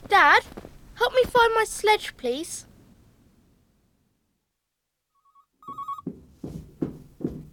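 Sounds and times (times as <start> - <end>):
speech: 1.4 - 2.7
telephone ringing with an electronic trill: 5.2 - 6.1.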